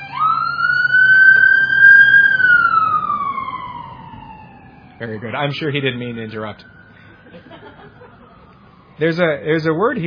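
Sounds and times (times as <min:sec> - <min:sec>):
ambulance siren wailing as it passes: 0:00.0 - 0:10.0
low traffic rumble: 0:00.0 - 0:10.0
speech: 0:05.0 - 0:06.8, 0:09.0 - 0:10.0
laughter: 0:07.0 - 0:08.5.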